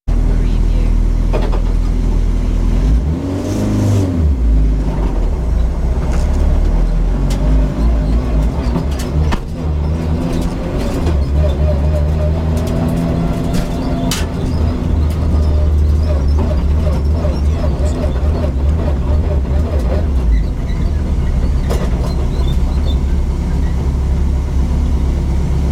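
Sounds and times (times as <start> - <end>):
rally car juddering and squeaking: 0.2 - 25.7.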